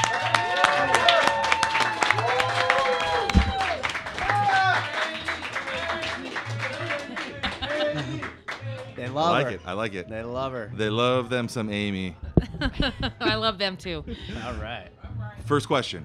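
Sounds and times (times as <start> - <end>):
room full of people clapping: 0.0 - 9.5
laughter: 5.1 - 9.6, 12.2 - 14.6
speech: 9.2 - 16.0.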